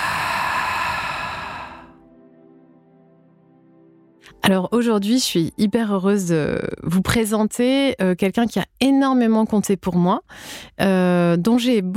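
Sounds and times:
deep held breath exhaled through the mouth: 0.0 - 2.0
speech: 4.3 - 11.9.

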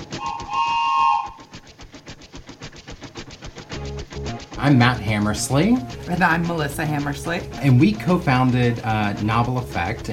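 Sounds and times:
train rumbling over tracks with clickety-clack: 0.0 - 2.0, 4.1 - 10.1
whistle-like tone: 0.1 - 1.6
speech: 4.6 - 10.1.

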